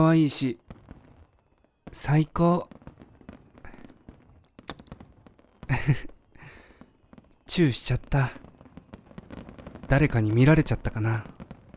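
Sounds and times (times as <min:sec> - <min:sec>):
speech: 0:00.0 - 0:00.7, 0:01.9 - 0:02.8, 0:05.7 - 0:06.1, 0:07.5 - 0:08.4, 0:09.9 - 0:11.4
fireworks cracking at a fireworks festival: 0:00.6 - 0:11.7
soft firework pop: 0:04.6 - 0:05.0.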